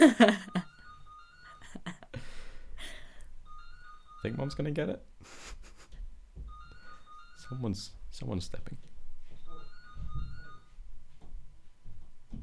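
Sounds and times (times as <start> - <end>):
mobile phone ringtone playing a short electronic melody: 0.2 - 4.7, 6.5 - 8.0, 9.4 - 10.8
speech: 4.2 - 5.6, 7.5 - 8.9.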